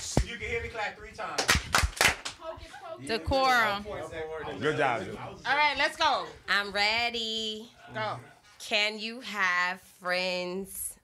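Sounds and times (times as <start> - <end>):
sharp hand claps during mic check: 0.0 - 0.4, 1.3 - 2.4
speech: 0.3 - 1.8, 3.0 - 10.9.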